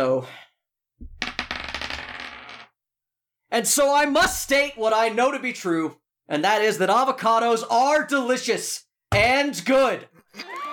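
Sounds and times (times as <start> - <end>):
speech: 0.0 - 0.4, 3.5 - 10.5
dice rolled at a tabletop game clattering across a hard surface: 1.0 - 2.7.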